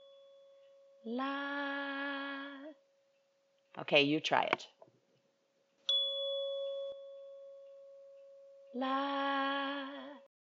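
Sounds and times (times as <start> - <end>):
struck tuning fork ringing with a pure sustained tone: 0.0 - 1.3, 5.9 - 9.9
speech: 1.0 - 1.9, 3.8 - 4.8, 8.7 - 10.0.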